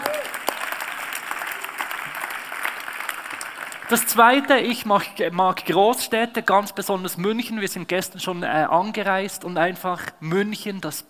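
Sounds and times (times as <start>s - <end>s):
audience applauding: 0.0s - 4.6s
speech: 3.9s - 11.0s.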